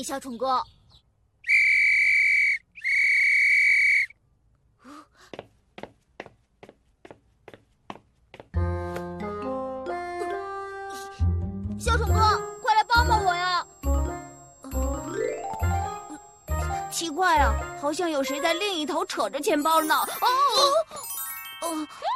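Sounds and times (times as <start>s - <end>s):
speech: 0.0s - 1.0s, 17.2s - 20.9s, 21.7s - 22.0s
whistle blasts: 1.4s - 4.2s
light tapping footsteps: 5.2s - 9.2s
bright music: 8.6s - 22.1s.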